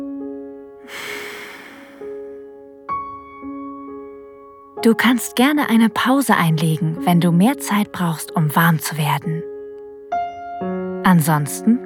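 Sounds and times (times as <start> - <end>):
soft exhale during a guided self-touch session: 0.9 - 2.3
speech: 4.8 - 9.4, 11.1 - 11.8.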